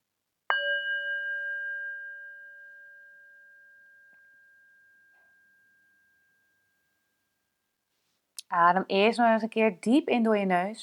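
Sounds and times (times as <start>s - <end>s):
singing bowl struck as meditation start signal: 0.5s - 7.2s
speech: 8.5s - 10.8s.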